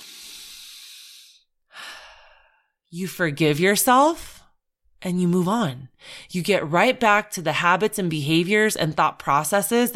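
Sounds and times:
person drawing a deep breath and exhaling: 0.0s - 2.8s
speech: 2.9s - 4.4s, 5.0s - 9.9s.

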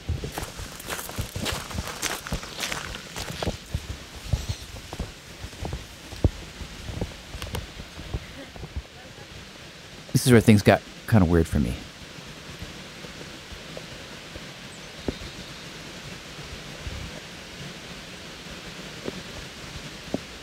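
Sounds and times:
footsteps crunching outdoors in light rain: 0.0s - 8.8s
light rain outdoors: 0.0s - 20.4s
raindrops landing: 0.4s - 8.9s
speech: 10.2s - 11.9s.

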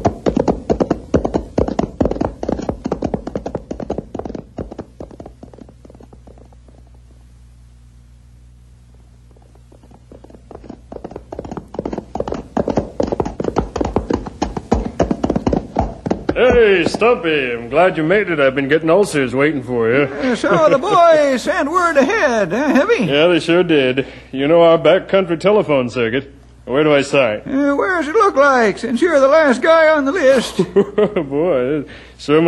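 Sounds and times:
horse hooves clip-clopping: 0.0s - 7.2s, 8.9s - 17.4s
faint low hum: 0.0s - 32.4s
speech: 17.0s - 32.4s
laughter: 19.9s - 23.1s, 30.2s - 31.5s.

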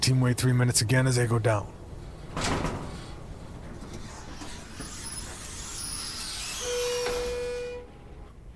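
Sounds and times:
speech: 0.1s - 1.8s
elevator sliding door rumbling shut with a mechanical whir: 1.8s - 8.3s
steady electronic beep: 6.6s - 8.2s.

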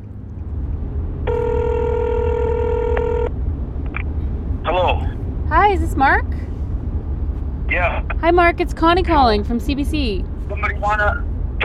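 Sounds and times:
low constant rumble: 0.0s - 11.6s
ringback tone of an outgoing cell phone call: 1.3s - 3.3s
speech: 8.2s - 11.2s.

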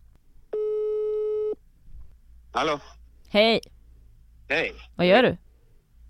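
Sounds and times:
electronic phone ringing tone: 0.6s - 1.6s
speech: 2.6s - 3.7s, 4.5s - 5.4s.

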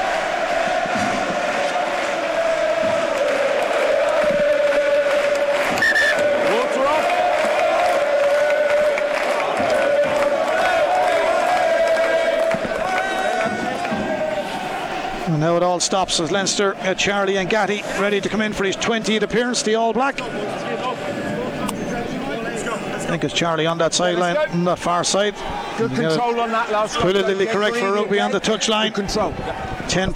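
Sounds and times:
huge home crowd singing a chant at a rugby stadium: 0.0s - 19.2s
general crowd roar at a rugby stadium: 0.0s - 30.1s
speech: 15.8s - 20.9s, 23.1s - 30.1s.

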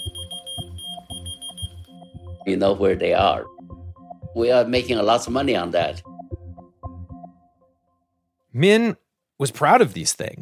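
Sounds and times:
small electronic key finder beeping with a thin high-pitched tone: 0.0s - 1.8s
speech: 2.4s - 3.6s, 4.4s - 6.1s, 8.6s - 10.4s.

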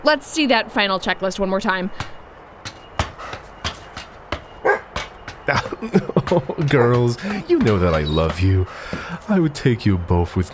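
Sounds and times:
speech: 0.1s - 2.2s, 5.5s - 10.5s
dogs barking: 3.1s - 8.1s
laughter: 5.5s - 9.5s.

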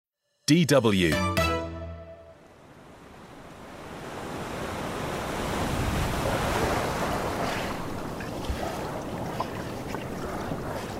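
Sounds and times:
speech: 0.5s - 1.4s
sea waves rolling along the shore of Niangai Island off Sierra Leone: 2.5s - 10.9s.

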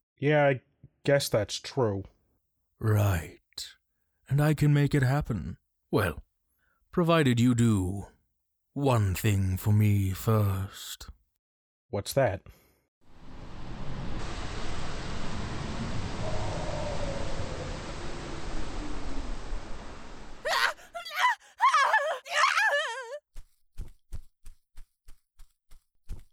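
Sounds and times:
speech: 0.2s - 2.1s, 2.8s - 6.2s, 6.9s - 8.1s, 8.8s - 11.2s, 11.9s - 12.6s
steady rumbling noise: 13.1s - 20.5s
wavering high-pitched scream: 20.4s - 23.2s.

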